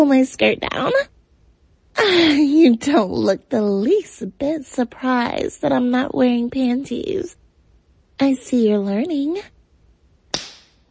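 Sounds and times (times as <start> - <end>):
speech: 0.0 - 1.1, 2.0 - 7.4, 8.2 - 9.5
hand slapping bare skin: 10.3 - 10.8.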